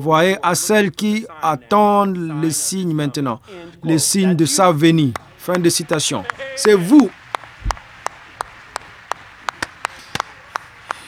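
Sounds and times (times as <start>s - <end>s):
speech: 0.0s - 7.8s
laughter: 0.0s - 11.0s
sharp separate handclaps: 3.4s - 11.0s.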